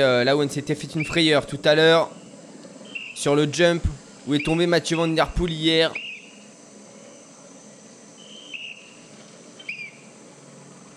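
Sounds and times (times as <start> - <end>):
speech: 0.0 - 2.2, 3.2 - 6.0
faint chirping: 0.0 - 10.9
steady hum of outdoor ambience: 0.0 - 10.9
shrill whistle blasts warning of approaching riders at a cycling race: 2.8 - 3.3, 5.9 - 6.4, 8.2 - 9.0, 9.6 - 10.0.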